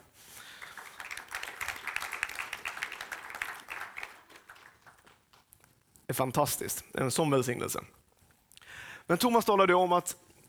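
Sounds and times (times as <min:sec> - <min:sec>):
church audience applauding after a sermon: 0:00.0 - 0:05.5
speech: 0:06.1 - 0:08.0, 0:09.1 - 0:10.2.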